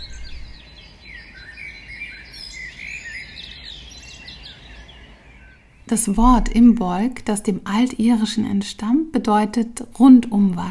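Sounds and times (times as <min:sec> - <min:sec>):
birds singing and chirping: 0:00.0 - 0:08.8
steady low outdoor rumble: 0:05.8 - 0:10.6
speech: 0:05.9 - 0:10.6.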